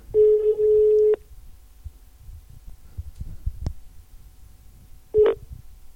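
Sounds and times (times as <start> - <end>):
ringback tone of an unanswered phone call: 0.1 - 1.2, 5.2 - 5.4.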